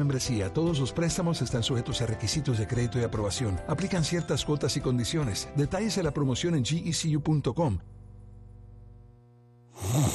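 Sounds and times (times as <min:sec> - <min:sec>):
speech: 0:00.0 - 0:08.0
faint electrical hum: 0:06.4 - 0:10.1
loud rasping snore: 0:09.7 - 0:10.1.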